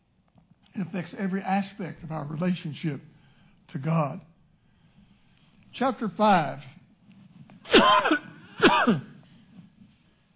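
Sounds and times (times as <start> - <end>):
speech: 0.8 - 4.3, 5.7 - 6.8, 7.7 - 9.1
harsh throaty coughs: 7.7 - 9.2.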